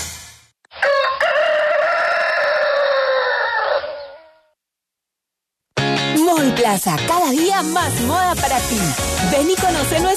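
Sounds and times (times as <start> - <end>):
rooster crowing: 0.7 - 4.5
speech: 6.7 - 10.1.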